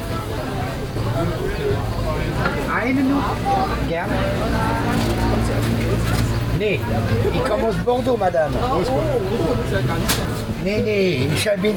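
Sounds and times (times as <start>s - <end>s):
low rumble of traffic: 0.0s - 11.7s
outdoor market crowd chatter at the Winterfeldtmarkt in Berlin: 0.0s - 11.7s
speech: 2.8s - 11.7s.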